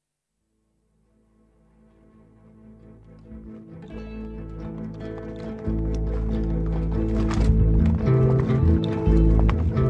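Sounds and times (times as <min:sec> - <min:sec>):
steady droning musical bed: 0:01.1 - 0:09.8
patrol unit horse's hooves clopping at a walk: 0:03.2 - 0:09.8.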